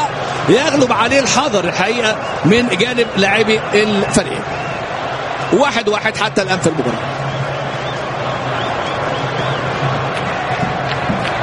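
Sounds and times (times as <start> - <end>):
large stadium crowd of football fans roaring: 0.0 - 11.4
speech: 0.5 - 4.6, 5.5 - 7.2
faint whistles in stadium crowd: 2.2 - 4.8, 7.2 - 9.7.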